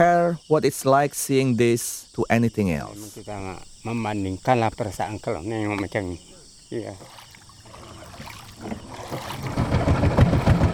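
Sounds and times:
speech: 0.0 - 7.2
wooden outboard boat motoring along a peat canal: 6.9 - 10.7.

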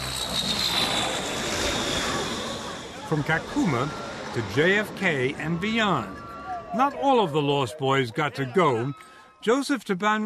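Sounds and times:
airplane arriving at a camp, engine drone: 0.0 - 7.0
speech: 3.1 - 10.2.

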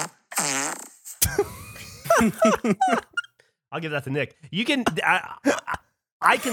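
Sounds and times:
long buzzy wavering fart: 0.0 - 1.4
laughter: 1.2 - 3.3
speech: 2.2 - 3.1, 3.7 - 6.5.

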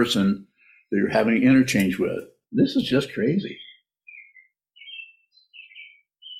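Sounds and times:
speech: 0.0 - 3.6
bird chirping: 0.0 - 6.3.

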